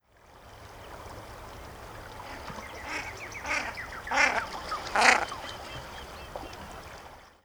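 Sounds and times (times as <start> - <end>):
common shelduck: 2.2 - 6.5.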